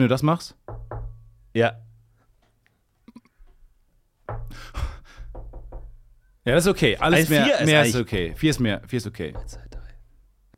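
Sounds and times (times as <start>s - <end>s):
speech: 0.0s - 0.6s, 1.6s - 1.8s, 6.4s - 9.7s
rapid rhythmic knocking with a scraping, rattly edge: 0.6s - 1.2s, 4.2s - 7.1s, 7.9s - 10.1s.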